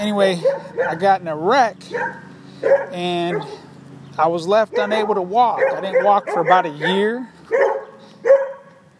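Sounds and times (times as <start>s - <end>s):
speech: 0.0s - 3.6s, 4.2s - 7.8s
dog barking: 0.3s - 1.1s, 1.9s - 3.7s, 4.7s - 8.8s.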